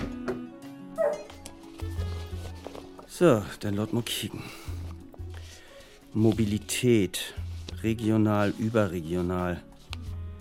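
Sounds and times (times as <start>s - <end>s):
happy dog barking and whimpering: 1.0s - 1.3s
speech: 3.2s - 4.6s, 6.1s - 9.7s.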